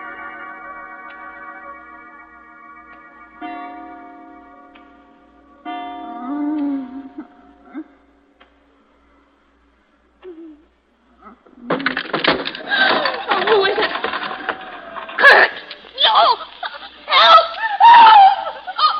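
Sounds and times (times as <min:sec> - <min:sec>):
dense noisy commotion: 0:00.0 - 0:18.9
harsh crackling and clattering: 0:11.5 - 0:16.9
laughter: 0:12.6 - 0:18.9
woman screaming: 0:17.1 - 0:18.9.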